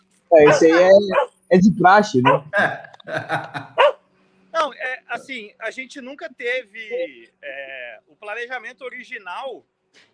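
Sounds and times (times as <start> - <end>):
speech: 0.3 - 3.9, 4.6 - 10.1
laughter: 0.4 - 1.1, 2.2 - 3.8
dog barking: 0.4 - 1.4, 2.2 - 2.6, 3.7 - 4.0.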